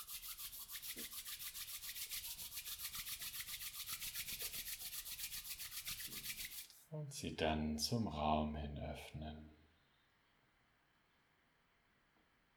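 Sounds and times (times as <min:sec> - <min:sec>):
hands rubbing together in front of the chest: 0:00.0 - 0:06.8
speech: 0:06.9 - 0:09.6.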